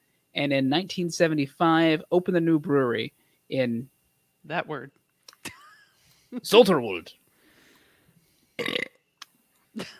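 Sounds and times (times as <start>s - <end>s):
speech: 0.4s - 5.0s, 6.3s - 7.2s, 8.6s - 8.9s, 9.8s - 9.9s
loud rumbling burp: 8.6s - 9.0s.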